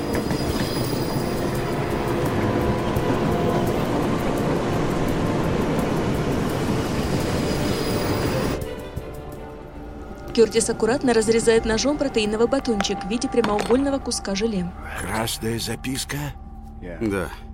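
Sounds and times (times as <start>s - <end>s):
faint metallic squeal of train: 0.0s - 1.7s
frost-covered train speeding across snowy plains with rattling wheels: 0.0s - 9.6s
speech: 10.4s - 17.5s.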